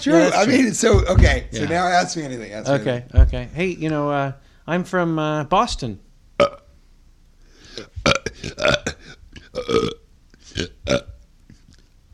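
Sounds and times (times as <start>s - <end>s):
speech: 0.0s - 6.6s, 9.6s - 11.1s
person burping: 6.4s - 6.7s, 7.7s - 11.2s.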